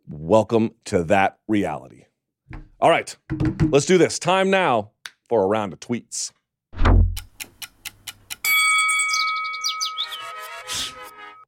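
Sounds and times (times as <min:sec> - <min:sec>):
speech: 0:00.3 - 0:02.1, 0:02.8 - 0:06.9
low thud: 0:06.8 - 0:07.2
clock ticks: 0:07.2 - 0:08.5
bright sustained chime with short chirpy flourishes: 0:08.5 - 0:10.3.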